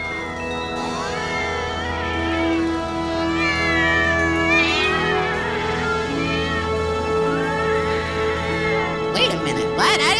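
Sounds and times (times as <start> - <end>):
several stray cats meowing and yowling: 0.0 - 9.8.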